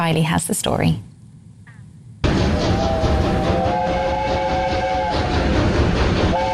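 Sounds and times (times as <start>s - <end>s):
speech: 0.0s - 1.1s
steam locomotive rumbling past on railway: 2.1s - 6.5s.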